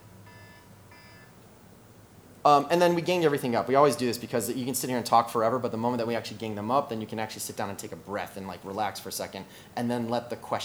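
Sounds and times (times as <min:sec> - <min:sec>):
constant low hum: 0:00.0 - 0:10.6
electronic alarm with high-pitched tone: 0:00.2 - 0:01.4
speech: 0:02.4 - 0:10.6.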